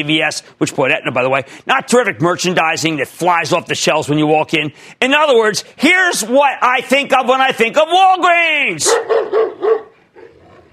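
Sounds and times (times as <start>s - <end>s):
speech: 0.0s - 9.8s
dog barking: 8.8s - 10.7s.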